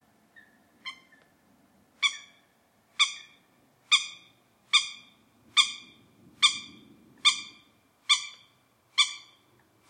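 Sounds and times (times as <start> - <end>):
Eurasian coot calling: 2.0 - 9.8.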